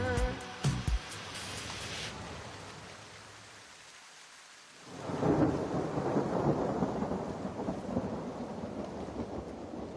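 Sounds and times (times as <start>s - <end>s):
dense hiss of steady rainfall: 0.0s - 9.9s
roll of thunder: 5.0s - 9.9s.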